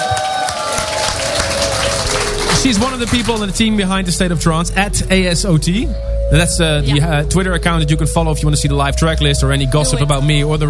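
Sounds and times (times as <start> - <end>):
crowd clapping: 0.0 - 4.3
sustained humming musical tone: 0.5 - 10.6
speech: 2.6 - 10.6.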